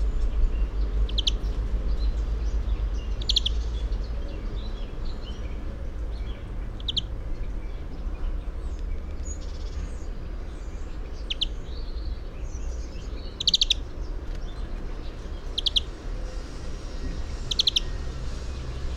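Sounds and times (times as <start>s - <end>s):
low rumbling background noise: 0.0s - 18.9s
European greenfinch Chloris chloris calling in short rapid trilled bursts: 0.5s - 5.5s, 6.2s - 7.8s, 10.6s - 16.0s, 16.8s - 18.4s.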